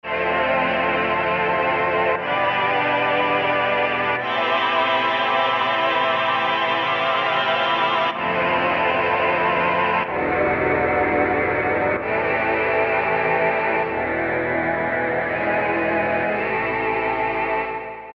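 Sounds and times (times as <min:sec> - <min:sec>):
Alesis Micron synthesizer pad voices: 0:00.1 - 0:18.0.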